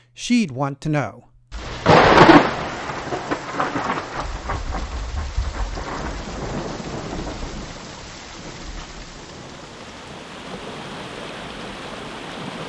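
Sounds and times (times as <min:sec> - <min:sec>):
speech: 0:00.2 - 0:01.3
rain hissing: 0:01.5 - 0:12.6
thunder: 0:01.5 - 0:12.6
river water rushing: 0:09.8 - 0:12.6.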